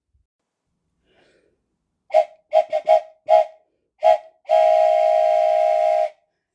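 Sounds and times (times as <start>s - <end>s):
steam train whistle: 2.1s - 6.2s.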